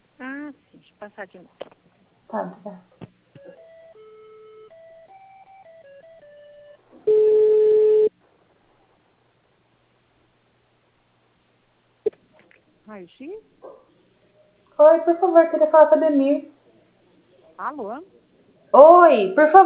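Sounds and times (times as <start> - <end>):
speech: 0.9 - 3.1, 13.0 - 13.6, 14.8 - 16.5, 17.6 - 19.6
steady telephone line tone after a dropped call: 3.4 - 8.1.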